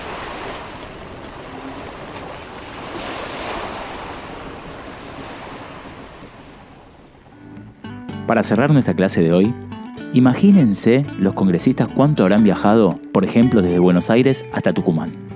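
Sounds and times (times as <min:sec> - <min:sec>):
water rushing and washing around a wooden sailing ship under way: 0:00.0 - 0:07.4
wind blowing: 0:00.0 - 0:07.9
speech: 0:08.3 - 0:15.3.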